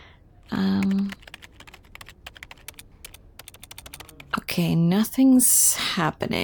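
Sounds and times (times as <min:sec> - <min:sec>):
computer keyboard typing: 0:00.4 - 0:04.5
speech: 0:04.6 - 0:06.4.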